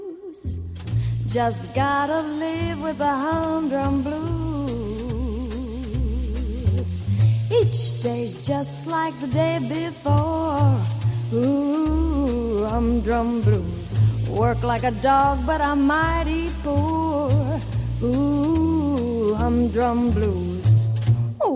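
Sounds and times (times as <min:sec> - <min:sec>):
blues music: 0:00.4 - 0:21.5.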